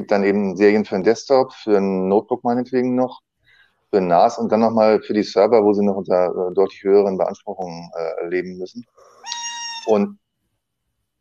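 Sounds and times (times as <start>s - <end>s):
speech: 0.0s - 3.3s, 3.9s - 9.1s, 9.8s - 10.2s
mobile phone ringtone for an incoming call: 9.3s - 10.0s.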